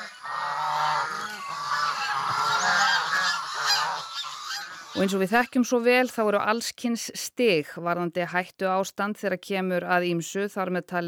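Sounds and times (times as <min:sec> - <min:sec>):
flock of geese honking: 0:00.0 - 0:05.5
speech: 0:05.0 - 0:11.0.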